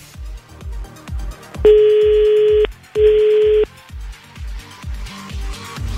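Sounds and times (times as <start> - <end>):
telephone ringing on an outgoing call: 1.7 - 3.7.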